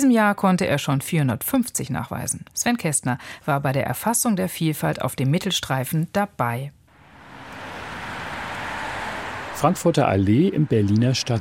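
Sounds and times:
speech: 0.0 - 6.8, 9.6 - 11.3
heavy traffic on a busy six-lane city street: 6.9 - 11.3.

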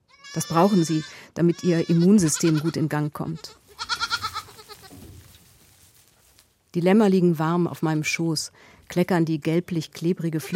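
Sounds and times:
young goats bleating: 0.0 - 5.1, 10.3 - 10.5
speech: 0.4 - 3.6, 6.8 - 10.5.

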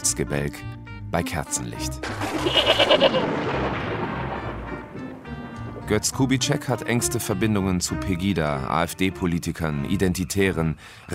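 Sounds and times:
speech: 0.0 - 3.9, 5.9 - 11.1
goat bleating at a homestead in Saxony-Anhalt Germany: 2.2 - 3.2.

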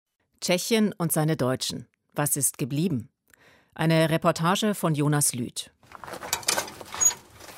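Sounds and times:
speech: 0.4 - 3.1, 3.8 - 6.3
cemetery gate door squeaking and scraping on its hinges: 6.4 - 7.5.

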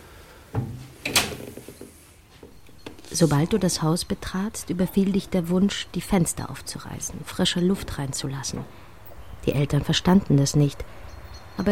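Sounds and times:
faint knocks and shuffles: 0.5 - 3.9
door being opened: 0.6 - 1.9
speech: 3.2 - 11.0, 11.6 - 11.7.

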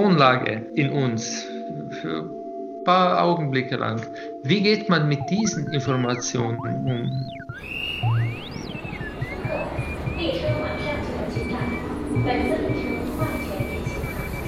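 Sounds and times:
speech: 0.0 - 8.2, 12.2 - 13.4
low rumble of a moving subway train: 9.0 - 14.4
crowd of passengers murmuring in a subway carriage: 9.4 - 14.4.

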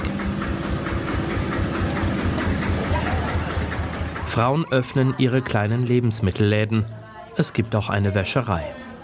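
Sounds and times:
tractor driving along gravel road: 0.0 - 4.6
speech: 4.4 - 8.8.

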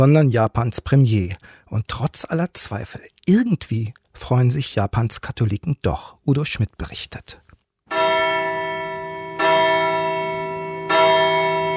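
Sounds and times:
speech: 0.0 - 7.4
church bell tolling for evening mass: 7.9 - 11.7.

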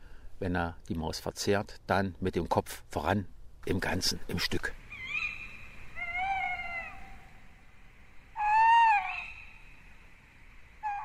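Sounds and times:
speech: 0.4 - 4.8
tawny owl hooting: 4.8 - 11.0.

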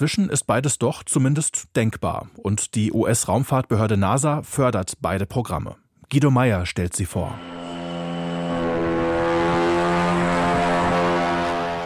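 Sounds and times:
speech: 0.0 - 7.6
small test helicopter rotors whirring while lifting off: 7.3 - 11.8.

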